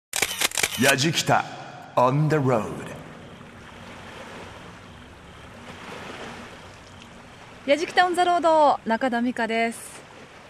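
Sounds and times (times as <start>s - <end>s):
speech: 0.8s - 3.0s, 7.7s - 10.0s
water lapping along the shore of Lake Kawaguchi: 2.1s - 10.4s.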